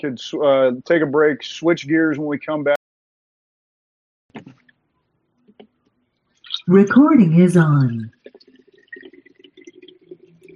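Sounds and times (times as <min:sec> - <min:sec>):
speech: 0:00.0 - 0:02.8, 0:06.6 - 0:08.2
water pouring into a bottle: 0:08.1 - 0:10.5.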